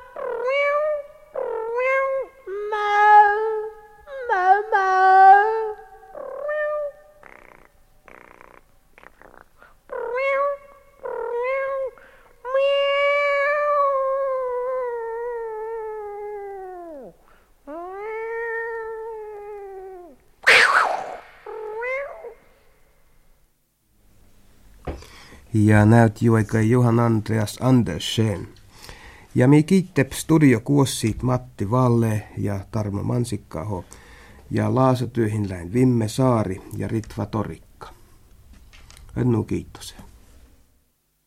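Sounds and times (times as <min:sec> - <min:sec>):
cat meowing: 0:00.0 - 0:05.3, 0:06.1 - 0:08.6, 0:09.2 - 0:17.1, 0:17.7 - 0:22.4
speech: 0:25.6 - 0:28.6, 0:29.4 - 0:37.7, 0:39.2 - 0:40.0.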